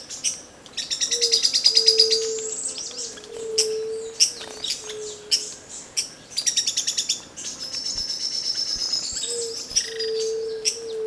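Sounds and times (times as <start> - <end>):
Philydor rufum: 0.0 - 11.0.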